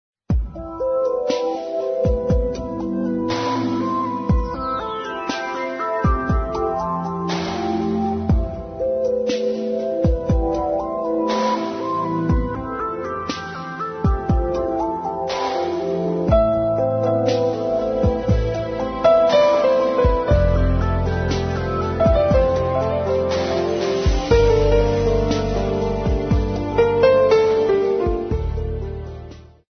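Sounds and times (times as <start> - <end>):
new age music: 0.3 - 29.7.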